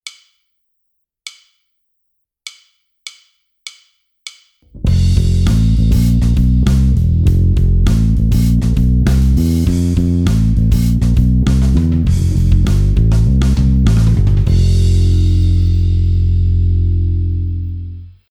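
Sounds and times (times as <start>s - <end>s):
bass phrase: 4.7s - 18.2s.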